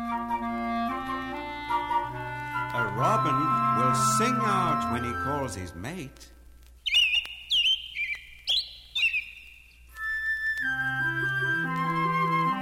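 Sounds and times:
gentle music with sustained tones and a low bass line: 0.0s - 6.4s, 9.9s - 12.6s
speech: 2.8s - 6.4s
small bird peeping: 6.8s - 10.4s.

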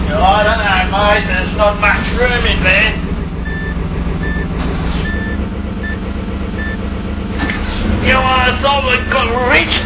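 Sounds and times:
truck diesel engine rumble: 0.0s - 9.8s
speech: 0.9s - 3.0s, 8.0s - 9.8s
truck reversing alarm beeping: 3.4s - 7.0s.

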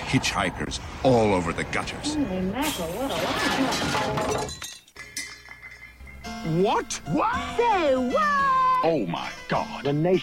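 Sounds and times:
speech: 0.1s - 4.7s, 6.4s - 10.2s
crash of shattering metal wreckage: 2.8s - 4.8s
debris clattering and clinking as it settles: 2.8s - 6.2s.

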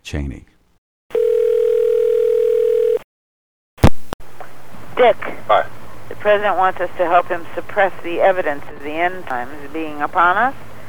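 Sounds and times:
speech: 0.1s - 0.5s, 5.0s - 10.7s
telephone dial tone: 1.1s - 3.0s.

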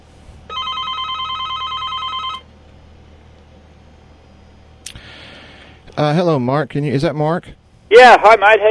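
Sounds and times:
electronic telephone ring with high warbling tones: 0.5s - 2.4s
speech: 6.0s - 8.6s.

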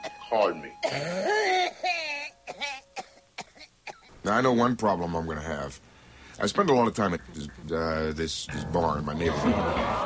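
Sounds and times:
speech: 0.3s - 1.6s, 4.3s - 10.0s
person coughing and groaning in strained fits: 0.8s - 4.1s
laughter: 9.1s - 10.0s.

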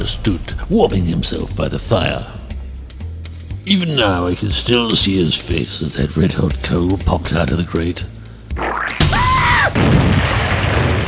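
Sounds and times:
speech: 0.0s - 2.4s, 3.7s - 8.1s
explosion: 8.6s - 11.0s
lingering rumble and crackle: 9.8s - 11.0s.

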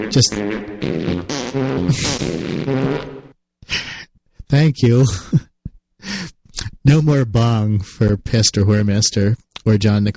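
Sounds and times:
buzzy raspy fart sound effect: 0.0s - 3.4s
speech: 0.0s - 3.8s, 4.5s - 6.2s, 6.8s - 10.1s.

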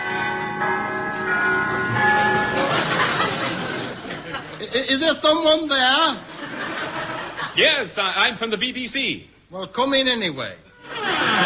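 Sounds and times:
doorbell chiming: 0.0s - 4.0s
audience laughter: 2.4s - 4.6s, 6.2s - 7.6s, 10.9s - 11.4s
speech: 4.9s - 6.3s, 7.6s - 10.6s.

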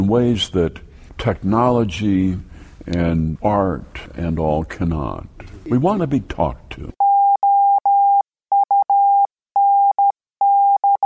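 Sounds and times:
speech: 0.0s - 7.0s
Morse code beeps: 7.0s - 11.0s.

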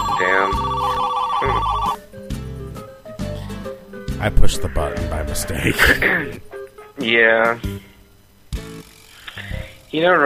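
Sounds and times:
telephone ringing with an electronic tone: 0.0s - 2.0s
speech: 4.2s - 7.9s, 9.9s - 10.2s.

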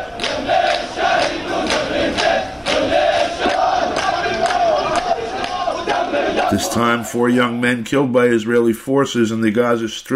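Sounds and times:
large crowd of mourners chanting at a funeral procession in Palestine: 0.0s - 7.5s
speech: 6.5s - 10.1s.

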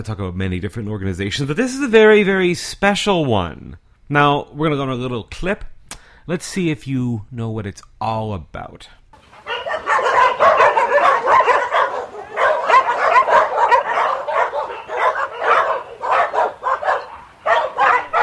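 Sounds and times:
speech: 0.0s - 5.7s, 6.3s - 9.0s
pack of dogs barking and yipping: 9.2s - 18.2s.

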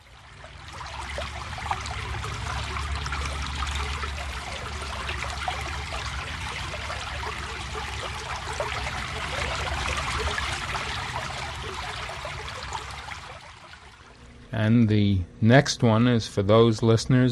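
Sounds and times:
country brook water babbling over stones: 0.0s - 14.2s
speech: 14.6s - 17.3s.

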